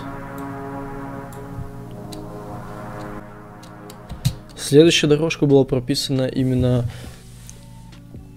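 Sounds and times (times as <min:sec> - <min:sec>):
two-note synth melody made with Massive and Nexus synth plugins: 0:00.0 - 0:05.6
speech: 0:04.6 - 0:07.1.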